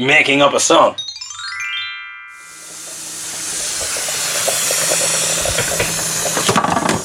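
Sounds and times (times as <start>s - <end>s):
speech: 0.0s - 1.1s
brief tonal whine: 2.2s - 6.6s
steam hissing from a pot of potatoes cooking on the stove: 2.4s - 7.0s
faint bubbling of potatoes cooking in a pot: 2.6s - 6.8s.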